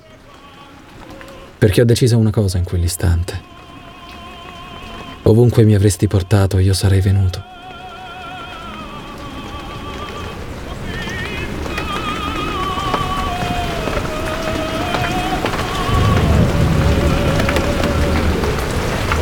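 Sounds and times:
steady rain: 0:00.0 - 0:19.2
speech: 0:01.6 - 0:03.6, 0:05.3 - 0:07.5
low rumble: 0:15.3 - 0:19.2.

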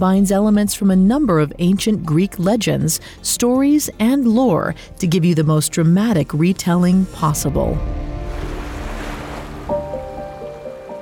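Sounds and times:
speech: 0:00.0 - 0:08.2
sustained musical tones: 0:07.3 - 0:11.0
gentle waves lapping against a smooth rocky beach on the Mediterranean Sea at dawn: 0:08.3 - 0:10.6.

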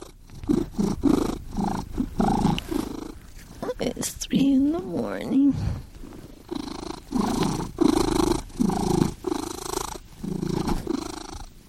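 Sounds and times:
cat purring at night: 0:00.0 - 0:11.6
speech: 0:03.9 - 0:05.9.

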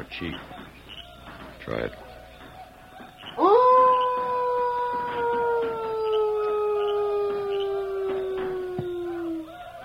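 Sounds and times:
speech: 0:00.0 - 0:00.6, 0:01.6 - 0:02.0
person imitating a wolf howl as a signal call: 0:03.4 - 0:09.8.

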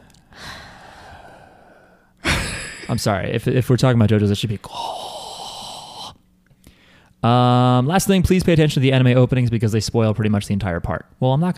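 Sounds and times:
voice imitating breathing with a breathy exhale: 0:00.0 - 0:02.9, 0:04.6 - 0:07.0
speech: 0:02.9 - 0:05.0, 0:07.2 - 0:11.5.

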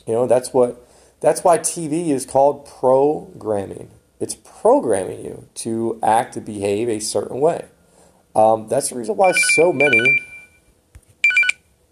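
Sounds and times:
speech: 0:00.0 - 0:07.8, 0:08.4 - 0:10.3
telephone ringing with a bright warbling electronic tone: 0:09.2 - 0:10.6, 0:11.2 - 0:11.6.

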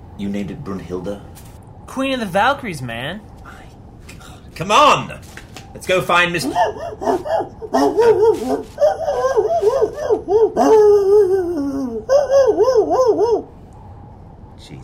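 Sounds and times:
speech: 0:00.2 - 0:03.3, 0:04.6 - 0:11.6, 0:12.4 - 0:13.5, 0:14.7 - 0:14.8
small dog yipping and barking excitedly: 0:06.4 - 0:10.8.

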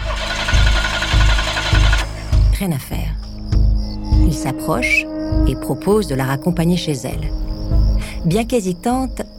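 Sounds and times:
car engine cranking without starting: 0:00.0 - 0:02.4
speech: 0:02.6 - 0:03.2, 0:04.2 - 0:07.5, 0:08.2 - 0:09.3.

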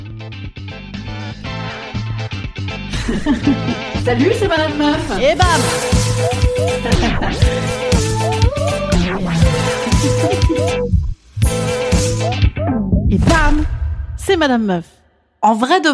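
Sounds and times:
relaxed instrumental podcast intro theme tune with bright melody and bass pulse: 0:00.2 - 0:13.1
laughter: 0:02.9 - 0:04.1, 0:06.6 - 0:07.9, 0:09.3 - 0:10.8
speech: 0:03.1 - 0:07.8, 0:14.3 - 0:15.9.

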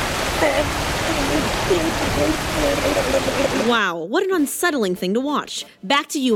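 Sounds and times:
water gushing from a fire hydrant on top of a race car: 0:00.0 - 0:03.7
speech: 0:00.4 - 0:06.3.

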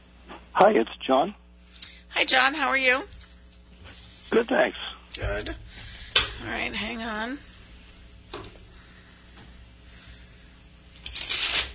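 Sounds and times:
speech: 0:00.6 - 0:01.4, 0:02.2 - 0:03.2, 0:04.3 - 0:05.6, 0:06.4 - 0:07.5
tarot cards being shuffled: 0:11.0 - 0:11.7.

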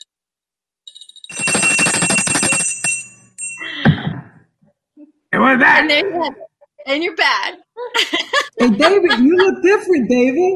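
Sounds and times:
small cowbell ringing: 0:00.9 - 0:03.7
laughter: 0:05.4 - 0:07.2, 0:07.8 - 0:10.5
speech: 0:05.5 - 0:10.5.

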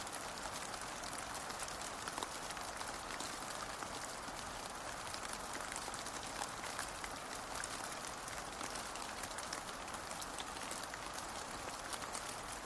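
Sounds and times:
steady rain: 0:00.0 - 0:12.6.

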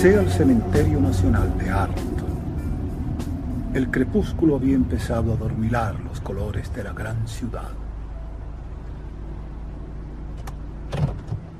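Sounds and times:
speech: 0:00.0 - 0:02.2, 0:03.7 - 0:07.8
taxi engine rumble as it pulls up and stops: 0:00.0 - 0:11.5
short mechanical clunks: 0:10.3 - 0:11.5.

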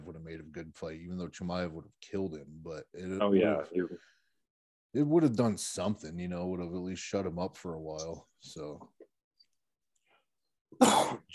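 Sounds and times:
speech: 0:00.3 - 0:04.2, 0:04.9 - 0:09.0, 0:10.7 - 0:11.3
single sharp cough: 0:10.8 - 0:11.3.

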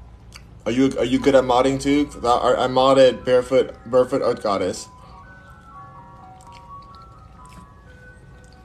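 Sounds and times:
speech: 0:00.7 - 0:05.0
ice cream truck tinkling jingle: 0:00.7 - 0:08.6
soft squishy noises: 0:05.2 - 0:08.6.

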